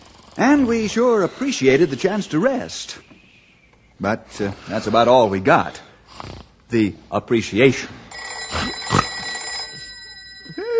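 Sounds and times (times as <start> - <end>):
speech: 0.4 - 3.1, 4.0 - 8.0
old-fashioned telephone bell ringing loudly: 8.1 - 10.7.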